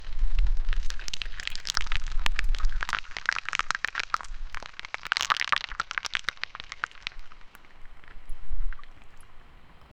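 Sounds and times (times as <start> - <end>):
giant rocks crumbling: 0.0 - 9.5.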